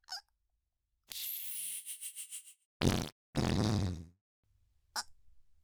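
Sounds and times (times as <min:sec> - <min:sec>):
loud hot fart: 0:02.8 - 0:04.1.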